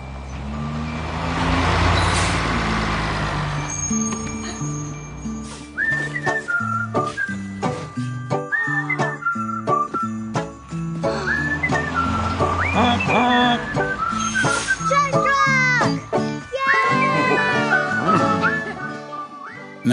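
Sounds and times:
garbage truck rumbling and snorting: 0.0s - 8.9s, 9.5s - 19.2s.

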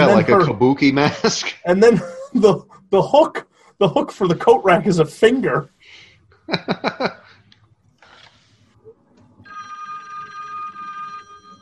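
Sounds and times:
laughter: 0.0s - 4.9s, 6.5s - 7.4s
speech: 0.2s - 7.2s
unplugged telephone ringing: 9.4s - 11.5s.

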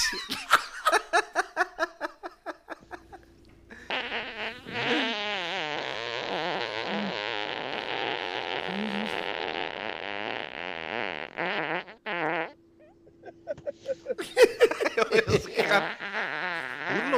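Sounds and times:
laughter: 0.0s - 3.2s, 13.1s - 16.1s
high-pitched sputtering whiny fart: 3.9s - 13.0s, 15.2s - 17.1s.

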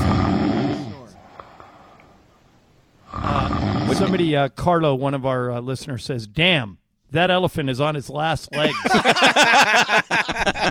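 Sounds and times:
human voice imitating a dog snoring: 0.0s - 1.2s, 3.1s - 4.3s
speech: 4.0s - 10.6s
laughter: 8.6s - 10.6s.

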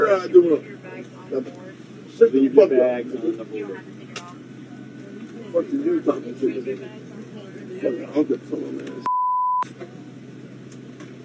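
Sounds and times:
speech: 0.1s - 4.0s, 5.5s - 7.1s, 7.8s - 9.1s
high-pitched censor bleep in a played video: 9.0s - 9.6s.

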